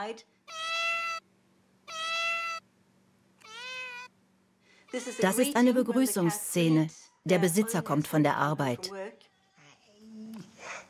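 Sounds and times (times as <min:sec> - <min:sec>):
speech: 0:00.0 - 0:00.6, 0:04.9 - 0:09.3
cat meowing at a door to go out: 0:00.5 - 0:01.2, 0:01.9 - 0:02.6, 0:03.4 - 0:04.1.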